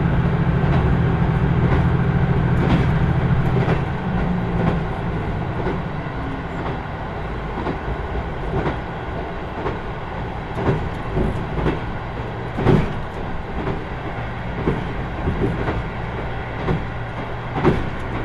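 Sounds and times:
deeper train engine drone: 0.0s - 7.4s
train rumble climbing a steep mountain grade: 0.0s - 18.2s.

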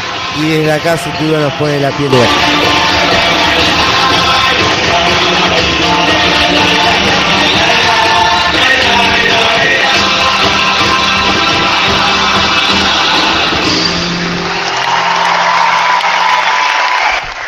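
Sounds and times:
large theater audience roaring and cheering in an ovation: 0.0s - 17.4s
speech: 0.4s - 3.2s
theater audience chanting rhythmically: 2.1s - 14.4s.

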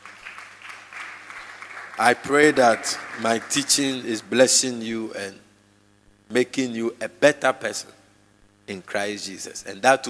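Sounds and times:
crowd clapping: 0.0s - 4.1s
speech: 2.0s - 5.4s, 6.3s - 8.0s, 8.7s - 10.0s.

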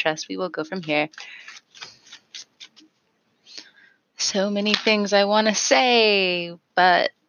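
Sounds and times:
speech: 0.0s - 1.9s, 4.2s - 7.2s
deck of tarot cards being shuffled during a tarot reading: 0.8s - 2.9s.

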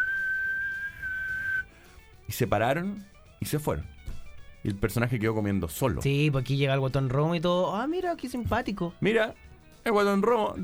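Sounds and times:
person whistling a high note imitating jeering diners in an Argentine restaurant: 0.0s - 1.7s
speech: 2.3s - 4.0s, 4.6s - 10.6s.

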